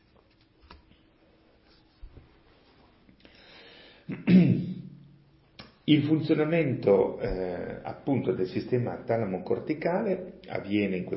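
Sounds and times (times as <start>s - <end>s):
faint handling and shuffling: 0.0s - 3.2s
speech: 5.9s - 11.1s.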